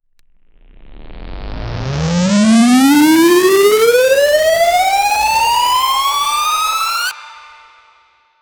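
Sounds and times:
riser build-up: 0.5 - 7.1.

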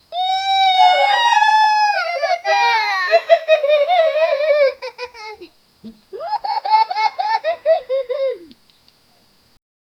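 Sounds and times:
three young boys laughing: 0.2 - 8.6.

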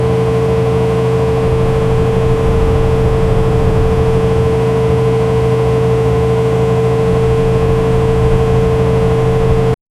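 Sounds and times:
American truck: 0.0 - 9.8.

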